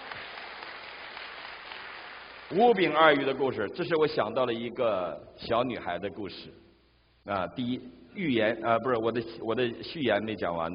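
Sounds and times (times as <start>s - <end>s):
church congregation applauding: 0.0s - 3.1s
speech: 2.5s - 6.6s, 7.2s - 10.7s.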